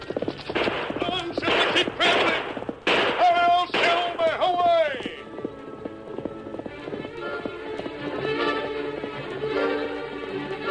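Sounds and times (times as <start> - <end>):
gunshots: 0.0 - 5.2
horse galloping: 0.0 - 10.6.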